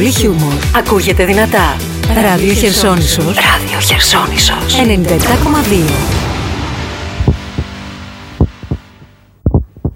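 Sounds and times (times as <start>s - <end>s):
speech: 0.0s - 6.2s
heartbeat sound effect deep low thumps: 7.2s - 7.8s, 8.4s - 9.9s.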